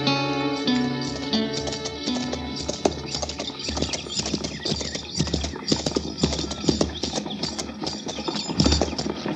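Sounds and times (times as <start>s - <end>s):
horse hooves clip-clopping at a hitch rack: 0.2s - 9.3s.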